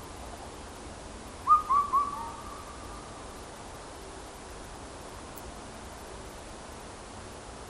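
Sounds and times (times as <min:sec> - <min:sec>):
faint background hiss: 0:00.0 - 0:07.6
Indian cuckoo call: 0:01.4 - 0:03.2.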